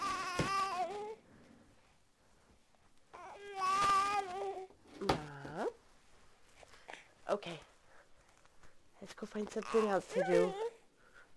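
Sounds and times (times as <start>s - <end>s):
baby fussing and crying: 0.0s - 1.2s, 3.2s - 4.7s, 9.6s - 10.8s
speech: 7.4s - 7.7s, 9.0s - 10.6s.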